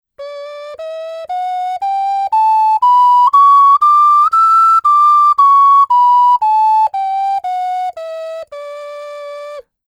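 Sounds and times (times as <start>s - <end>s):
six-hole ocarina playing a scale: 0.2s - 9.8s.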